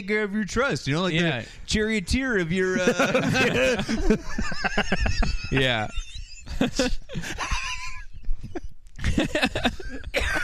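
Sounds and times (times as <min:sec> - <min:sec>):
speech: 0:00.0 - 0:07.6, 0:09.2 - 0:10.4
breathy laugh-like sounds: 0:02.9 - 0:10.4
harsh coughs into a microphone: 0:09.9 - 0:10.4.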